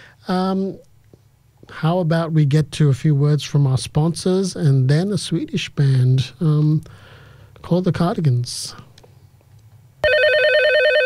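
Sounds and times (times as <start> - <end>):
speech: 0.2 - 0.9, 1.7 - 8.8
telephone ringing with electronic trill: 10.0 - 11.0.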